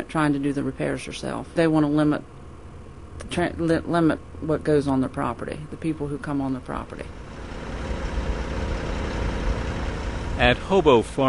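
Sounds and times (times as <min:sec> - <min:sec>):
speech: 0:00.0 - 0:02.4, 0:03.2 - 0:07.2, 0:10.4 - 0:11.2
large semi-truck engine idling on a farm: 0:07.0 - 0:10.9.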